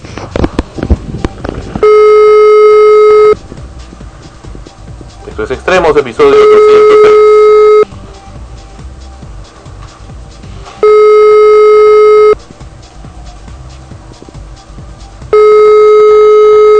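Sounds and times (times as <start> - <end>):
telephone ringback tone of an unanswered call: 1.8 - 3.4, 6.3 - 7.9, 10.8 - 12.4, 15.3 - 16.7
speech: 5.4 - 7.3.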